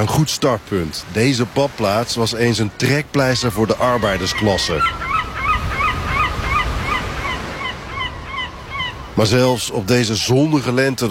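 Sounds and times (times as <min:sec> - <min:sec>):
speech: 0:00.0 - 0:05.1, 0:09.2 - 0:11.0
seagulls screeching at a seaside resort on the English east coast: 0:03.2 - 0:10.3.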